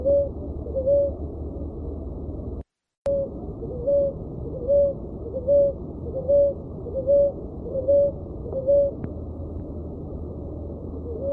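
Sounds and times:
dove hooting: 0:00.0 - 0:01.2, 0:03.1 - 0:09.0, 0:11.0 - 0:11.3
faint background hum: 0:00.0 - 0:11.3.

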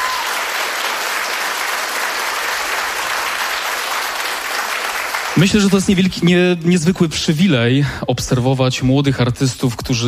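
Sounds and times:
studio audience applause at a live stage concert: 0:00.0 - 0:06.1
speech: 0:05.4 - 0:10.0.

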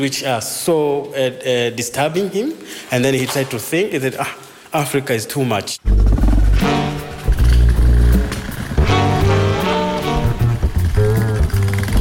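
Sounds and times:
speech: 0:00.0 - 0:06.8
motorcycle engine on a ride through countryside near a nature reserve: 0:05.9 - 0:11.9.

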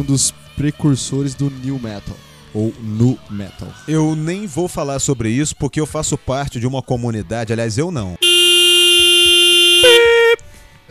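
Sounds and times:
speech: 0:00.0 - 0:08.2
buzzy horn blast: 0:08.2 - 0:10.4.

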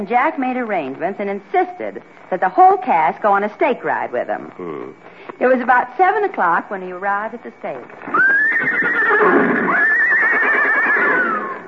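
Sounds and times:
speech: 0:00.0 - 0:09.7
horses neighing as a radio drama sound effect: 0:04.3 - 0:05.2, 0:08.0 - 0:11.6.

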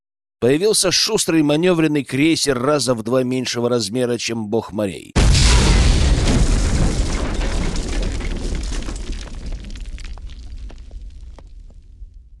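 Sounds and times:
speech: 0:00.4 - 0:05.4
heavy explosion rocking a ship: 0:05.2 - 0:12.3
scattered crackles: 0:05.2 - 0:12.3.

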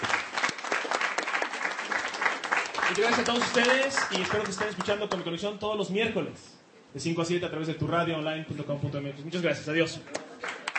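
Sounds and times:
audience clapping after a birthday song: 0:00.0 - 0:05.3, 0:10.1 - 0:10.7
speech: 0:03.0 - 0:10.6.

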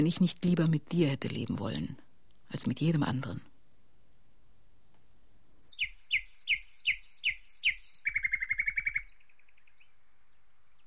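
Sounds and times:
speech: 0:00.0 - 0:03.5
songbird singing in daytime: 0:05.6 - 0:10.8.

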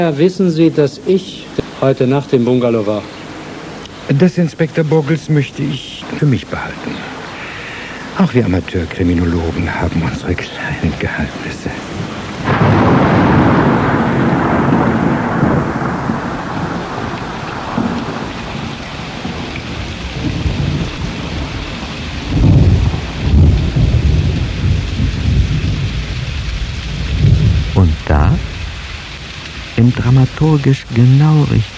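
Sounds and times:
speech: 0:00.0 - 0:03.2, 0:04.1 - 0:07.2, 0:08.2 - 0:11.8, 0:29.9 - 0:31.7
heavy rain downpour at the start of the rainy season: 0:00.0 - 0:31.7
deep rolling rumbles of thunder: 0:08.2 - 0:31.2.

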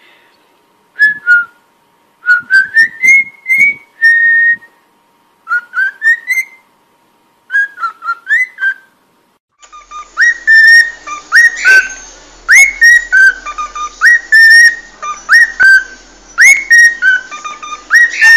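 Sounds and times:
cockatiel whistled song: 0:02.3 - 0:04.7, 0:05.5 - 0:06.6, 0:07.5 - 0:08.9, 0:09.6 - 0:18.3.

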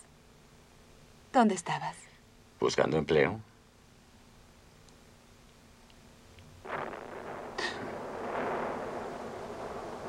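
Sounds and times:
speech: 0:01.4 - 0:03.5
distant German artillery cannon fire from a new cannon: 0:06.6 - 0:10.0.

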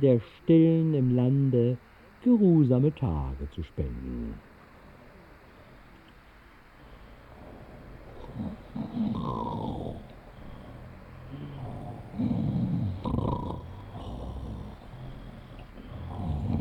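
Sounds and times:
speech: 0:00.0 - 0:04.5, 0:08.4 - 0:09.6
quiet breathing between snores: 0:04.4 - 0:16.6
sleeping person snoring: 0:08.1 - 0:16.6.

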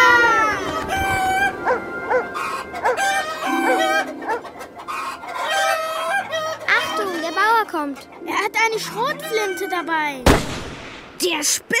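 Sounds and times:
rooster crowing: 0:00.0 - 0:06.6
chickens clucking on a chicken farm: 0:00.5 - 0:10.2
speech: 0:08.8 - 0:10.6, 0:11.2 - 0:11.7.

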